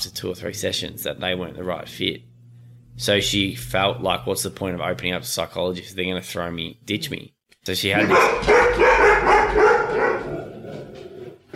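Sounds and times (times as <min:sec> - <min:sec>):
speech: 0:00.0 - 0:02.3, 0:03.0 - 0:08.8
dogs barking: 0:08.0 - 0:11.1.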